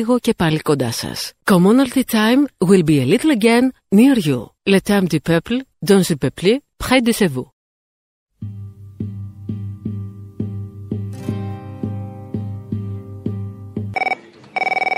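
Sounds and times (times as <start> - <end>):
speech: 0.0 - 7.5
brighter higher electronic tone: 13.9 - 14.9
telephone ringing in short electronic pulses: 13.9 - 14.9.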